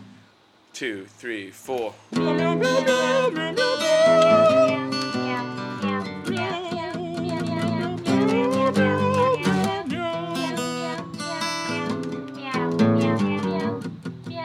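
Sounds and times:
speech: 0.8s - 4.5s
voices singing imitated cat meows: 2.3s - 6.6s, 7.3s - 13.8s.

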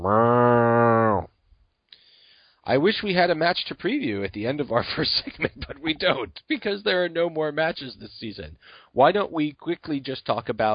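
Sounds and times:
cow mooing: 0.0s - 1.3s
speech: 2.6s - 10.7s.

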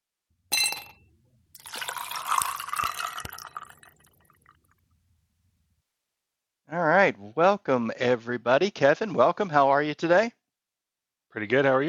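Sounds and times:
short bright clink of a glass: 0.5s - 4.1s
steady stream of liquid poured into a glass: 1.6s - 4.6s
speech: 6.7s - 10.4s, 11.3s - 11.8s.

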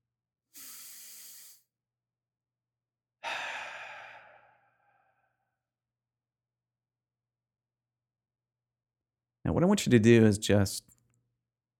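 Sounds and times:
louder breathy exhale out through the mouth: 0.5s - 1.7s, 3.2s - 5.4s
steady airy inhale during a guided relaxation exercise: 0.5s - 1.7s, 3.2s - 5.4s
speech: 9.5s - 10.9s.

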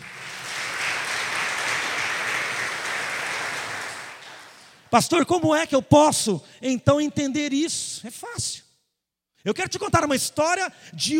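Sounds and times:
audience applauding: 0.0s - 4.8s
speech: 4.9s - 8.6s, 9.4s - 11.1s.

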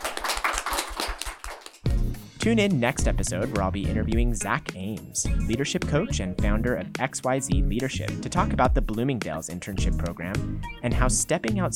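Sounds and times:
small group applauding: 0.0s - 1.9s
speech: 2.4s - 11.7s.

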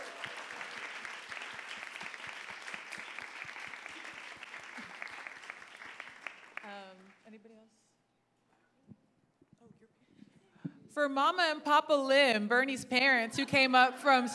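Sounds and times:
cheers: 0.0s - 5.1s
audience applause: 0.0s - 7.2s
speech: 11.0s - 14.3s.

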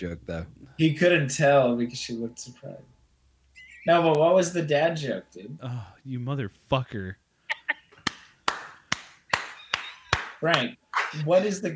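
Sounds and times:
speech: 0.0s - 3.0s, 3.8s - 7.2s, 10.4s - 11.7s
hands clapping in a steady rhythm as a segment intro: 8.0s - 11.3s.

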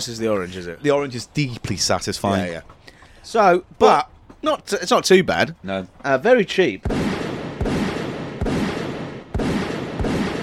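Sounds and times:
speech: 0.0s - 7.0s
loud gunshots: 6.8s - 10.4s.

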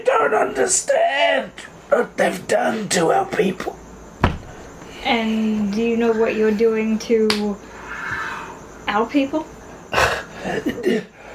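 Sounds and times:
speech: 0.1s - 3.8s, 5.0s - 7.7s, 8.9s - 11.2s
man coughing: 9.9s - 11.2s.

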